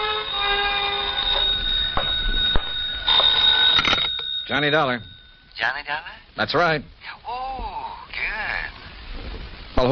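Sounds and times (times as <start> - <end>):
telephone bell ringing: 0.0 - 5.5
speech: 4.5 - 7.3, 9.8 - 9.9.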